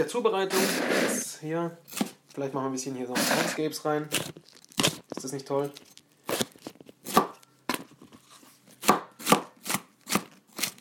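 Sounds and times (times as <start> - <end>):
speech: 0.0 - 4.5, 5.2 - 5.9
knife chopping a bell pepper on a cutting board: 7.0 - 7.4, 8.8 - 10.7.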